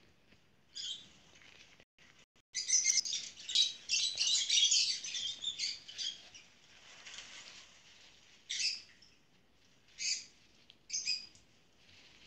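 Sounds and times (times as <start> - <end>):
lovebird chirping and chattering: 0.8 - 1.0, 2.6 - 6.5, 8.5 - 8.9, 10.0 - 10.3, 10.9 - 11.4.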